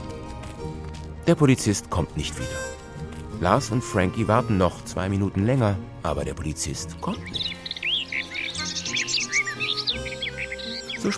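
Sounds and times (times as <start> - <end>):
speech: 1.3 - 2.8, 3.4 - 7.6
sparrows chirping in a park: 2.3 - 11.1.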